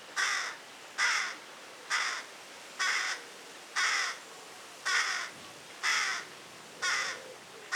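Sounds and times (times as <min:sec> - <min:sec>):
carrion crow Corvus corone uttering hoarse croaking caws: 0:00.2 - 0:02.2, 0:02.8 - 0:03.2, 0:03.8 - 0:04.2, 0:04.9 - 0:06.2.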